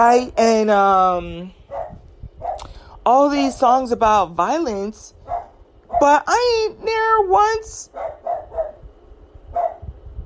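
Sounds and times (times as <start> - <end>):
speech: 0.0 - 1.6, 3.1 - 5.2, 6.0 - 8.2
low rumbling background: 0.0 - 10.2
dog barking: 1.7 - 2.6, 5.3 - 6.1, 7.9 - 8.8, 9.5 - 9.9.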